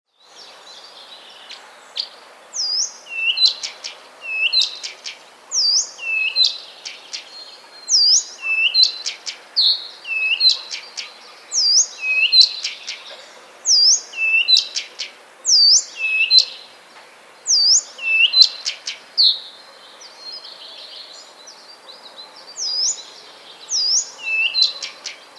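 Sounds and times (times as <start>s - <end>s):
garden warbler: 0.2s - 16.7s, 17.4s - 25.3s.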